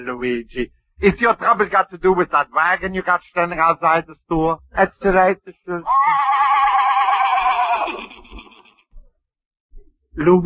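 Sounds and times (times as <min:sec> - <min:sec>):
speech: 0:00.0 - 0:06.7, 0:10.2 - 0:10.4
loud quavering horse whinny: 0:05.9 - 0:08.8.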